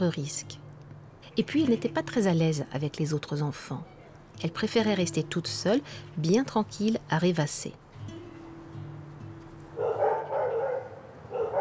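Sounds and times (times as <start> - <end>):
speech: 0.0 - 0.6, 1.4 - 7.8
large dogs barking: 9.8 - 11.5.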